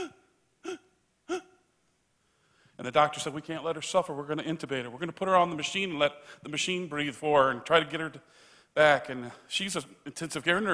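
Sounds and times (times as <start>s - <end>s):
voice imitating labored gasping breaths: 0.0s - 1.6s
speech: 2.8s - 10.7s.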